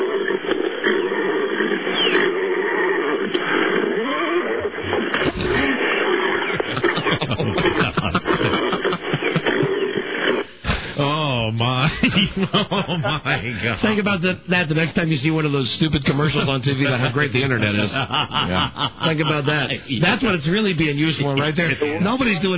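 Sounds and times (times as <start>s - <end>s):
dense noisy background: 0.0s - 22.5s
horse whinnying and snorting excitedly: 4.0s - 6.9s
laughter: 5.1s - 22.5s
speech: 12.4s - 22.5s.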